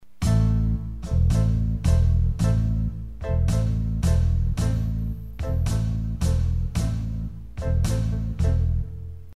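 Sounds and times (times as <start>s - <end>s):
habanera music: 0.2s - 9.3s.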